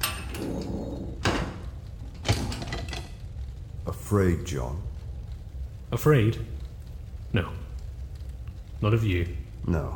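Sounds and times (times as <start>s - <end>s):
jailer shutting a door: 0.0s - 3.0s
low rumble: 0.0s - 9.9s
speech: 3.9s - 4.9s, 5.9s - 6.6s, 7.3s - 7.6s, 8.8s - 9.9s.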